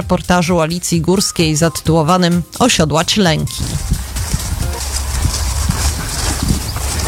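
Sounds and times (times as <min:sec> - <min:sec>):
speech: 0:00.0 - 0:04.0
rumbling outdoor background: 0:00.0 - 0:07.0
horse hooves clip-clopping at a walking pace: 0:01.2 - 0:07.0.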